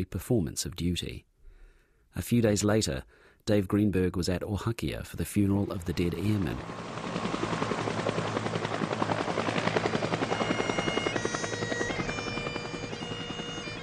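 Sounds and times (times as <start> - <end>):
speech: 0.0 - 1.3, 2.1 - 7.3
Iroquois helicopters rotor chop: 5.4 - 13.8
whining helicopter engine: 6.6 - 13.8.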